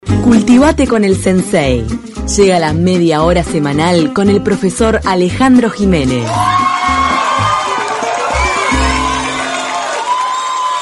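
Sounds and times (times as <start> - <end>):
speech: 0.1 - 6.8
crowd of fans cheering and shouting: 6.2 - 10.7.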